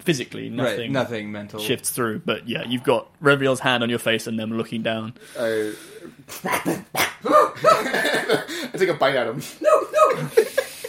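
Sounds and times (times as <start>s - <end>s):
speech: 0.0s - 10.6s
person imitating a dog barking and whining: 6.4s - 7.8s, 9.6s - 10.4s
laughter: 7.3s - 8.9s, 9.8s - 10.8s.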